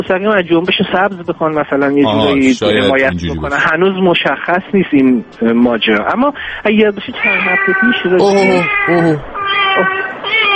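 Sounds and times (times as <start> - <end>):
speech: 0.0 - 10.1
unneutered cat meowing: 7.3 - 10.5.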